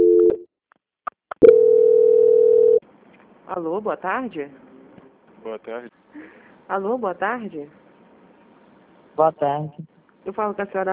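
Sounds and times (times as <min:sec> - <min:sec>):
telephone call transfer tone on a line: 0:01.4 - 0:02.8
speech: 0:03.5 - 0:04.6, 0:05.4 - 0:07.8, 0:09.2 - 0:10.9.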